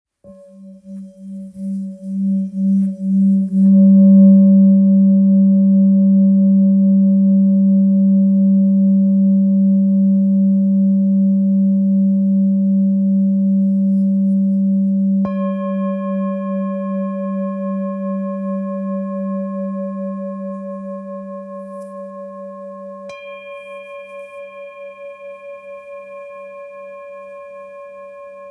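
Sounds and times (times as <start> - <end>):
875g Full Moon singing bowl in F sharp: 0.2 - 28.5.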